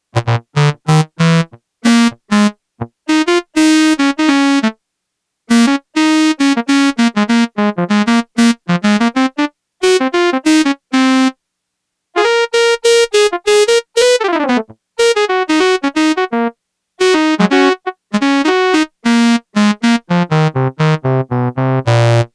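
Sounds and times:
Yamaha TX802 saxophone sound: 0:00.1 - 0:04.8, 0:05.5 - 0:11.3, 0:12.2 - 0:22.3.

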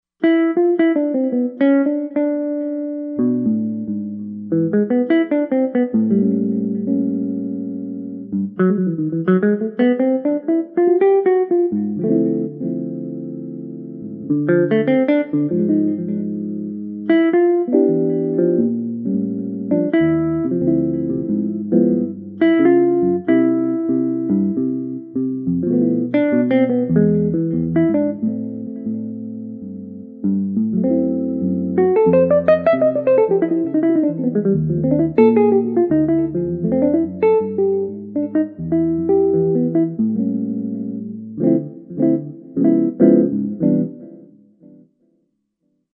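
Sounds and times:
jazz guitar: 0:00.2 - 0:44.8.

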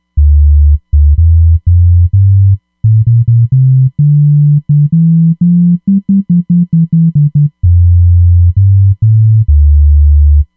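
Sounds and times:
synthesizer R&B bass: 0:00.1 - 0:10.5.

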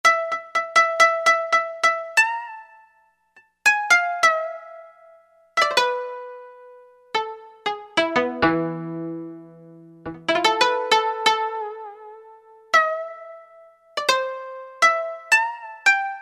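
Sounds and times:
koto pluck synth preset: 0:00.0 - 0:16.2.

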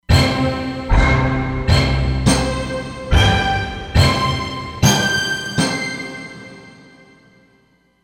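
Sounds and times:
Roland Fantom XR synthesizer multi hits: 0:00.1 - 0:06.5.

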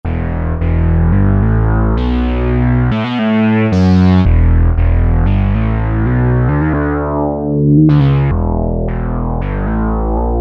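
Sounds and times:
Moog Taurus bass pedals sound on Alesis Micron synthesizer: 0:00.0 - 0:10.4.

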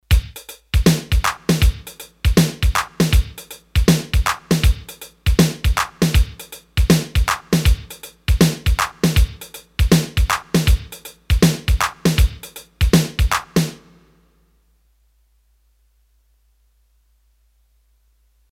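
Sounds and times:
Roland D-10 shuffle rhythm demo: 0:00.0 - 0:13.9.

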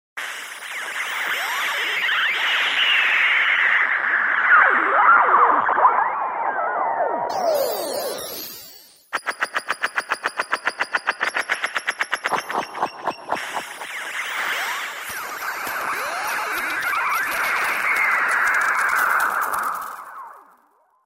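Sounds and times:
twisted special sound effects: 0:00.2 - 0:06.2, 0:07.3 - 0:20.9.

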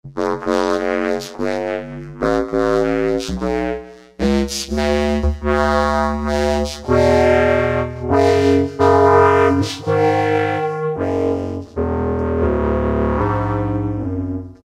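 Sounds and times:
synthesizer vocoder square wave: 0:00.0 - 0:14.6.

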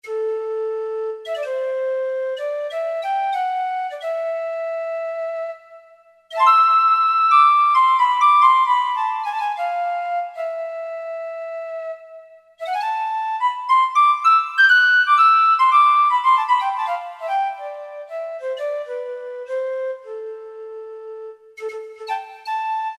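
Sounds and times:
lyric flute synthesizer preset: 0:00.0 - 0:22.9.

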